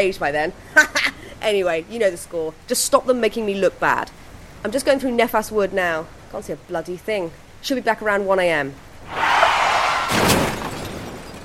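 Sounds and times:
speech: 0:00.0 - 0:09.2
car crashing into a minibus: 0:09.1 - 0:11.4
crunching and shattering of a crash: 0:10.1 - 0:11.4.

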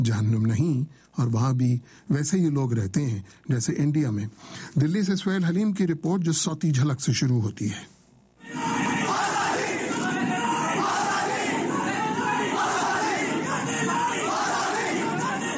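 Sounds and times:
speech: 0:00.0 - 0:08.9
large crowd chanting political slogans: 0:08.4 - 0:15.5.

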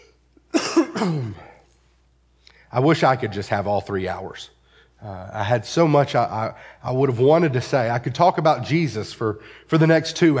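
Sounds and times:
person with a hoarse croaky voice clearing throat: 0:00.0 - 0:01.6
person with a hoarse croaky voice coughing: 0:00.0 - 0:01.6
speech: 0:01.0 - 0:01.5, 0:02.7 - 0:10.3.

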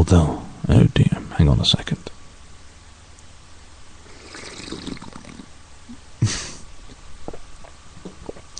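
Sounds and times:
speech: 0:00.0 - 0:02.1
person slurping tea from a cup: 0:04.1 - 0:05.5.

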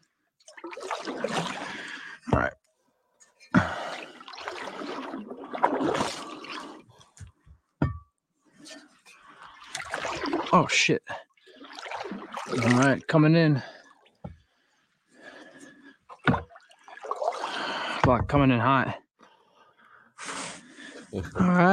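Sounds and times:
water trickling and splashing onto a person: 0:00.4 - 0:02.2, 0:03.6 - 0:07.2, 0:08.7 - 0:18.0
speech: 0:02.3 - 0:02.6, 0:10.6 - 0:11.1, 0:12.5 - 0:13.7, 0:18.1 - 0:19.0, 0:21.1 - 0:21.7.

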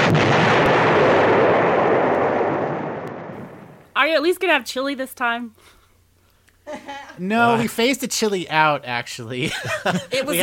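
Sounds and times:
loud booming explosion with long rumbling roar: 0:00.0 - 0:03.8
speech: 0:04.1 - 0:05.8, 0:06.7 - 0:10.4
laughter: 0:06.7 - 0:07.8, 0:09.4 - 0:10.4.

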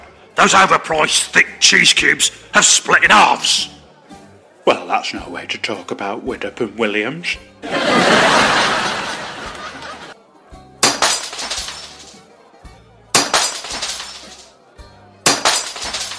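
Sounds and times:
speech: 0:00.4 - 0:03.8, 0:04.7 - 0:08.6
laughter: 0:07.6 - 0:10.2
crockery plates smashing: 0:10.8 - 0:12.2, 0:13.2 - 0:14.5, 0:15.2 - 0:16.1
crockery shards tinkling and scattering: 0:10.8 - 0:12.2, 0:13.2 - 0:14.5, 0:15.3 - 0:16.1.

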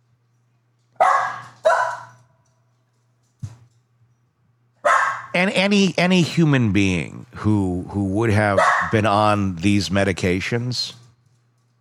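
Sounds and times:
low steady hum: 0:00.0 - 0:11.8
dogs barking: 0:01.0 - 0:02.3, 0:04.8 - 0:05.4, 0:08.5 - 0:09.2
speech: 0:05.3 - 0:11.0.

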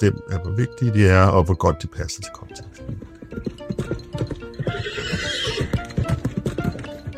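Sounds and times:
speech: 0:00.0 - 0:03.5
horse hoofbeats at a race: 0:02.2 - 0:07.1
horse whinnying: 0:02.6 - 0:07.1.

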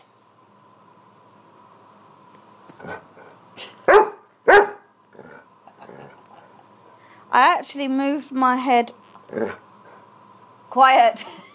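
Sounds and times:
dog barking: 0:03.9 - 0:04.9
speech: 0:07.4 - 0:09.6, 0:10.8 - 0:11.5.

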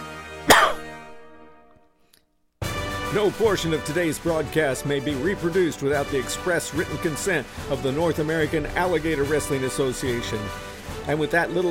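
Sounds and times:
dog coughing with harsh raspy cough: 0:00.5 - 0:01.0
speech: 0:03.1 - 0:11.6.

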